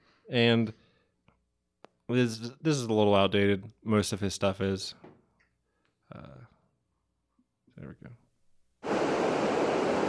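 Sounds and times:
speech: 0.3 - 0.8, 2.1 - 5.1, 6.1 - 6.4, 7.8 - 8.2
waterfall rushing water: 8.8 - 10.0.

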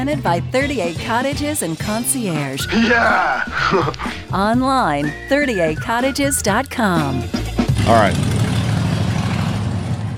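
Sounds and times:
speech: 0.0 - 8.3
laughter: 2.6 - 4.2
Harley-Davidson motorcycle rumbling past in the morning: 7.8 - 10.1.

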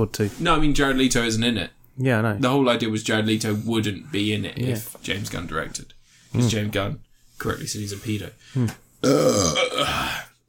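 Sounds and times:
speech: 0.0 - 10.3
burp: 9.0 - 10.3.

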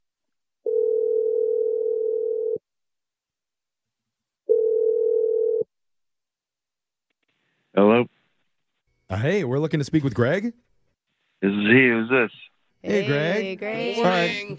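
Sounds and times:
long steady telephone ringback tones: 0.7 - 2.6, 4.5 - 5.7
speech: 9.3 - 10.7, 11.4 - 14.5.

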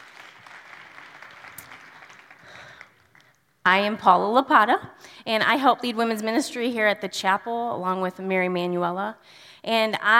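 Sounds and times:
crowd at a chapel applauding: 0.0 - 3.4
speech: 3.7 - 10.1.

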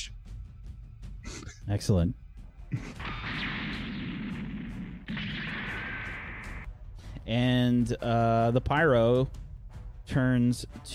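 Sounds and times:
speech: 1.7 - 3.0, 7.3 - 9.4, 10.1 - 10.9
sci-fi pulse rifle fire bursts: 3.0 - 6.7.

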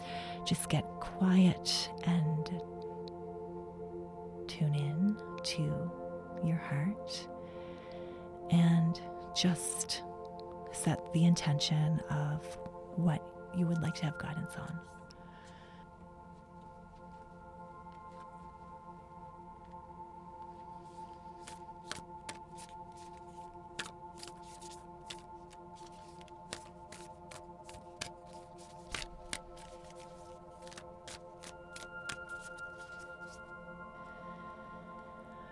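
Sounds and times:
soft steady musical drone: 0.0 - 35.5
speech: 0.5 - 2.7, 4.5 - 7.3, 8.5 - 10.1, 10.7 - 15.0
deck of cards being shuffled: 20.4 - 33.6.

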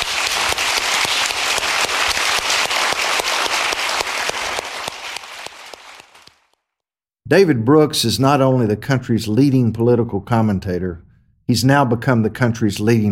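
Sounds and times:
large crowd applauding: 0.0 - 6.5
speech: 7.3 - 13.0.

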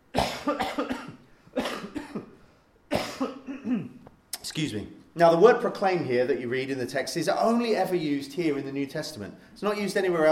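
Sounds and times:
harsh coughing: 0.1 - 4.1
speech: 4.6 - 10.3.

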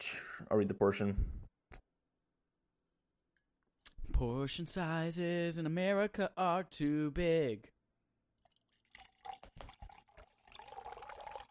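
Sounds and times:
speech: 0.0 - 1.5, 4.2 - 7.8
water pouring into a glass: 8.4 - 11.5.

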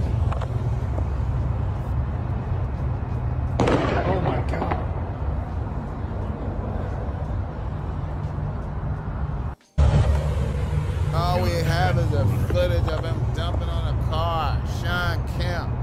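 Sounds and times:
steady low rumble: 0.0 - 15.8
volley of gunshots fired at a car in a drive-by: 3.6 - 4.9.

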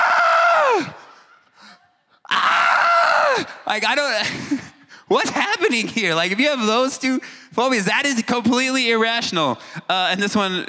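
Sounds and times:
speech: 0.6 - 1.0, 3.7 - 10.6
person imitating a terrified scream: 2.3 - 3.6.

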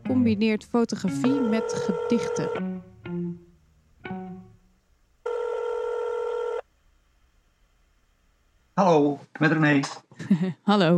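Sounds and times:
speech: 0.1 - 2.9, 8.8 - 10.9
telephone dialing tones: 1.2 - 2.6, 5.3 - 6.6
laughter: 10.2 - 10.6.

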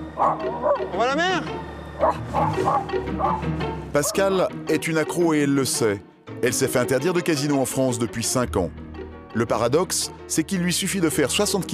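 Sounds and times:
dog barking: 0.2 - 0.9, 2.0 - 4.3
speech: 0.2 - 11.7.

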